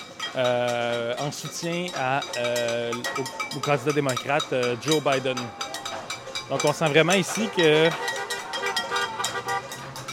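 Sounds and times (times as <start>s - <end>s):
traffic noise: 0.0s - 10.1s
speech: 0.3s - 5.7s, 6.5s - 8.2s
crowd noise: 2.0s - 10.1s
car horns honking at a political rally: 5.5s - 10.1s.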